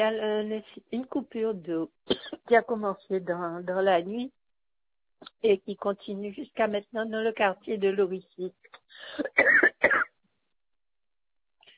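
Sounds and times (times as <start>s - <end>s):
speech: 0.0s - 4.4s, 5.2s - 9.7s
caller coughing during a phone call: 2.1s - 2.5s, 9.0s - 10.2s.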